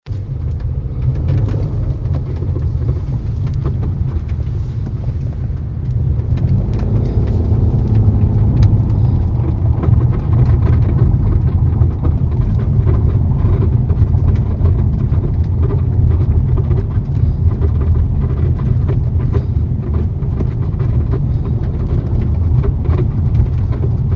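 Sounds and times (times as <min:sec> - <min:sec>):
6th generation Nissan Maxima 2004-2008 rattling: 0:00.0 - 0:24.1.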